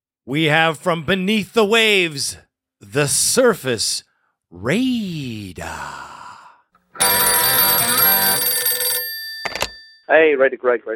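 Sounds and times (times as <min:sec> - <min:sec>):
speech: 0:00.2 - 0:06.1, 0:10.1 - 0:10.9
loud breathy sigh: 0:05.6 - 0:06.7
telephone ringing for an incoming caller: 0:07.0 - 0:10.1.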